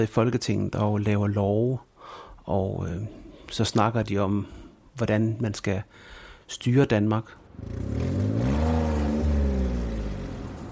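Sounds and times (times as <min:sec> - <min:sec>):
speech: 0:00.0 - 0:08.3
car engine revving up and accelerating: 0:07.5 - 0:10.7.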